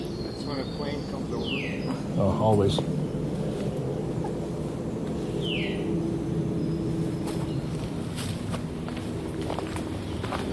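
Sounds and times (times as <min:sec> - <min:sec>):
bird singing outdoors on a trail: 0:00.0 - 0:08.1
steady low rumbling noise: 0:00.0 - 0:10.5
speech: 0:00.5 - 0:03.0.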